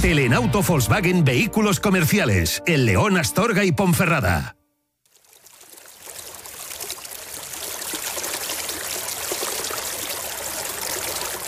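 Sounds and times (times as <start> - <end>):
speech: 0.0 - 4.6
stream of flowing water babbling and trickling: 5.0 - 11.4.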